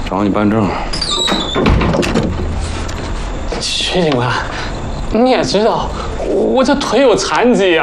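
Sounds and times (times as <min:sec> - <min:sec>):
speech: 0:00.1 - 0:02.3, 0:03.6 - 0:07.8
door squeaking open: 0:00.7 - 0:02.8
door rattling: 0:00.9 - 0:04.3.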